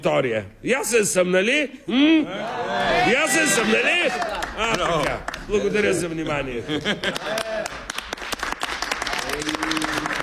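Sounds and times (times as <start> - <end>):
speech: 0.0 - 7.9
audience crowd applauding: 3.4 - 5.6, 6.9 - 10.2
laughter: 5.5 - 7.9.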